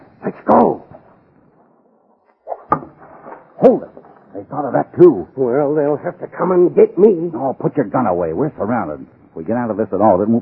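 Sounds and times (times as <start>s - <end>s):
speech: 0.3s - 0.8s, 3.6s - 10.4s
arrow striking timber with a solid thunk: 2.5s - 3.4s.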